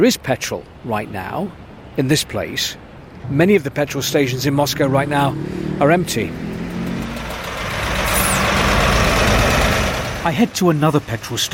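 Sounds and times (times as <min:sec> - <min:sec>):
speech: 0:00.0 - 0:06.5, 0:10.2 - 0:11.5
line of vehicles idling at a petrol station: 0:03.7 - 0:11.5
brief high squeal: 0:07.8 - 0:09.5.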